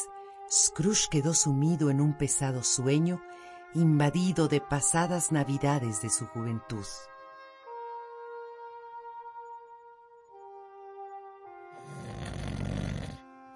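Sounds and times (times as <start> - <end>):
speech: 0.5 - 7.1
loud snoring: 11.8 - 13.3.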